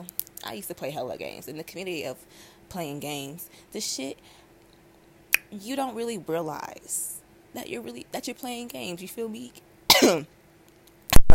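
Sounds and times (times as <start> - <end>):
speech: 0.4 - 4.4, 5.5 - 10.4
person coughing raspily: 9.9 - 10.3.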